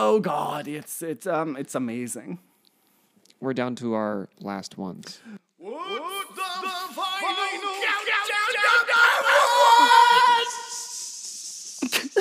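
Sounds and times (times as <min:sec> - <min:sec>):
speech: 0:00.0 - 0:02.5, 0:03.4 - 0:06.1
person yelling: 0:05.6 - 0:11.0.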